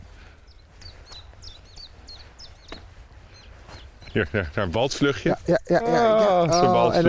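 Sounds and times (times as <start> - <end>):
sedge warbler song of short, high, down-slurred notes: 0.0 - 5.2
laughter: 4.2 - 7.0
speech: 4.2 - 7.0.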